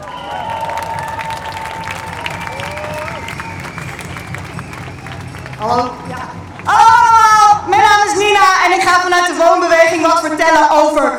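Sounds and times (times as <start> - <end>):
audience applause welcoming a speaker at a street rally: 0.0 - 7.5
street rally crowd noise: 0.0 - 11.1
speech: 5.6 - 6.2, 8.9 - 11.1.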